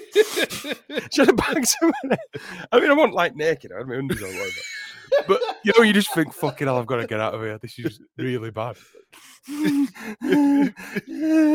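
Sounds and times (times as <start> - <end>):
laughter: 0.0 - 2.8, 4.1 - 8.0
speech: 0.1 - 11.5
man imitating raspy nasal wheezing breathing: 8.8 - 11.5.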